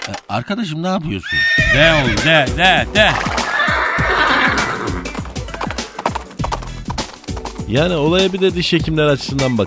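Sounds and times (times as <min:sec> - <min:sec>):
speech: 0:00.1 - 0:03.4, 0:07.7 - 0:09.6
horse neighing: 0:01.2 - 0:02.4, 0:03.0 - 0:07.6
hoof clops and knocking thuds on a hard surface: 0:03.0 - 0:03.8, 0:04.5 - 0:08.4.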